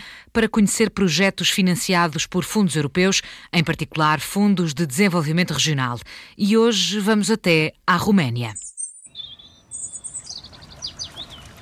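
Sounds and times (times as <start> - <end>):
speech: 0.4 - 8.7
several birds chirping and whistling at a lake: 8.6 - 11.6
soft steady outdoor hum: 9.1 - 11.6.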